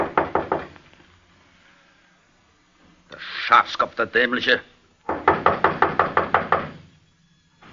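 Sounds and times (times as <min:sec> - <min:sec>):
loud knocks on a wooden door: 0:00.0 - 0:00.7, 0:05.1 - 0:06.8
speech: 0:03.5 - 0:04.7.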